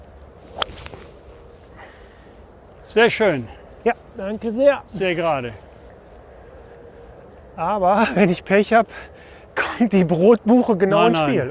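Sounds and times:
golf ball struck with a historical club on a course: 0.6 - 1.4
speech: 2.9 - 5.7, 7.6 - 11.5.

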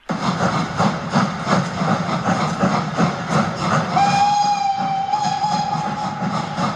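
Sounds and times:
steam locomotive chugging with rhythmic exhaust beats: 0.0 - 6.7
steam locomotive whistle: 3.9 - 6.7.

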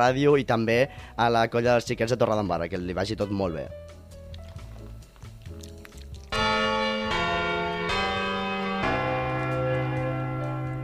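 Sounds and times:
speech: 0.0 - 4.0
church bell striking: 6.3 - 10.8.

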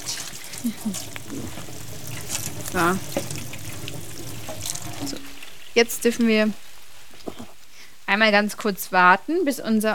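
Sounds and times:
running tap water as hands are washed in a kitchen: 0.0 - 7.6
speech: 0.6 - 3.6, 5.0 - 6.6, 8.1 - 9.9.

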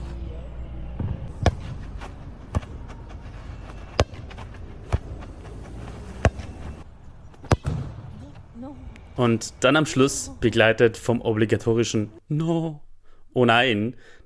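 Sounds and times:
football being juggled, passed and kicked: 1.0 - 6.8, 7.4 - 8.1
speech: 9.2 - 14.2.

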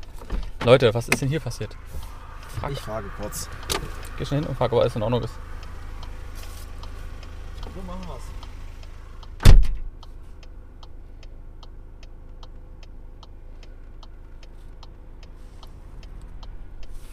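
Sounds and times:
low engine rumble of a stationary car: 0.0 - 17.1
speech: 0.6 - 5.5
indicator-like ticking inside a stationary car: 0.8 - 15.4
single heavy car door thud: 9.4 - 9.9.

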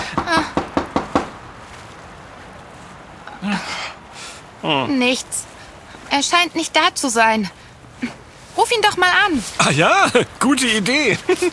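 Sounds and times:
sharp knocks on a door: 0.2 - 1.3
speech: 4.6 - 5.5, 6.1 - 11.5.

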